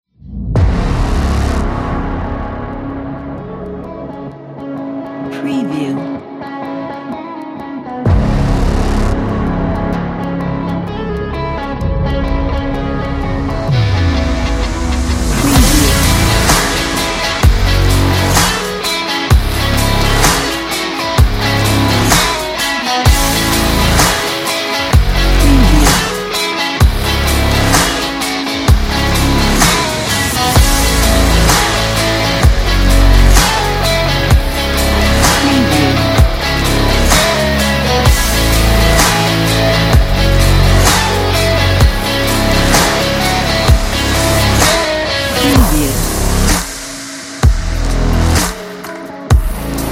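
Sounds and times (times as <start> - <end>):
epic rock music: 0.3 - 49.9.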